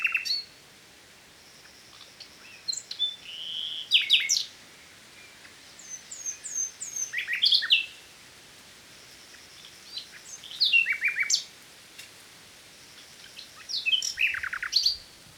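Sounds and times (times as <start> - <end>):
Common nightingale Luscinia megarhynchos singing sharp whistles and chirps: 0.0 - 0.5, 1.6 - 4.6, 5.2 - 8.0, 9.3 - 11.5, 13.2 - 15.2.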